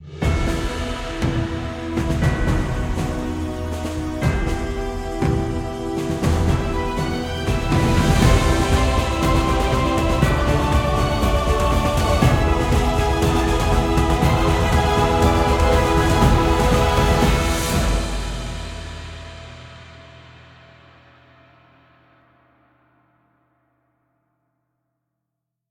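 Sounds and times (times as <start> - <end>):
gacha game theme music: 0.2 - 19.3.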